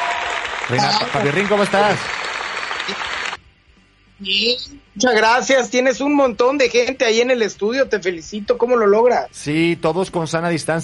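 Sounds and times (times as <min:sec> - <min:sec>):
dense audience applause of many hands clapping: 0:00.0 - 0:03.4
speech: 0:00.7 - 0:02.2, 0:02.9 - 0:03.2, 0:04.2 - 0:10.8.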